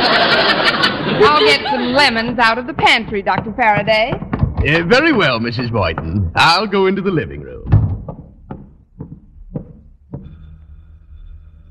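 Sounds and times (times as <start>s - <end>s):
laughter: 0.0s - 2.6s, 4.7s - 6.5s
speech: 1.2s - 7.7s
firm knocks on a front door: 2.2s - 5.3s, 7.6s - 10.3s.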